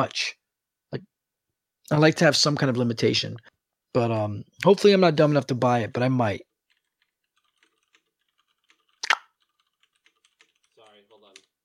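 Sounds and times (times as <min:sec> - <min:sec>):
speech: 0:00.0 - 0:01.1, 0:01.9 - 0:06.5
typing on a computer keyboard: 0:06.6 - 0:11.6.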